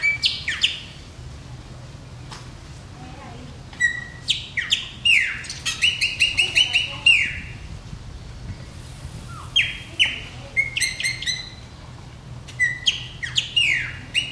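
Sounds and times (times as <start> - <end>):
chopi blackbird song: 0.0 - 1.0, 3.8 - 7.6, 9.2 - 11.7, 12.5 - 14.3.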